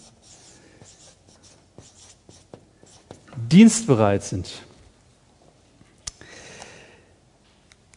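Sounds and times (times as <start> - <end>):
marker or chalk strokes scraping across a board: 0.0 - 3.3
speech: 3.5 - 4.7.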